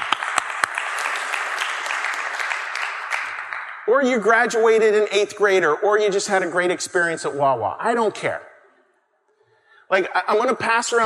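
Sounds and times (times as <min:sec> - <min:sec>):
crowd clapping: 0:00.0 - 0:04.6
speech: 0:03.9 - 0:08.5, 0:09.9 - 0:11.0.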